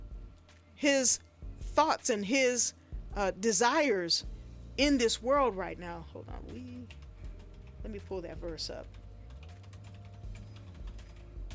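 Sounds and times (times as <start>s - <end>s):
low hum: 0.0s - 11.5s
speech: 0.8s - 7.0s, 7.8s - 9.0s
typing on a loud computer keyboard: 6.6s - 11.5s.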